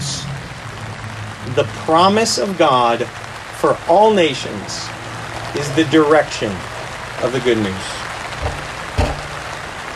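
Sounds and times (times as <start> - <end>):
steady rain pattering on surfaces: 0.0 - 9.9
speech: 1.5 - 8.0
soft low thuds: 8.4 - 9.5.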